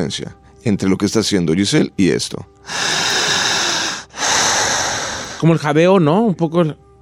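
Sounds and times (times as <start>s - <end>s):
speech: 0.0s - 3.2s, 5.4s - 6.8s
slow deep breathing: 2.6s - 5.4s.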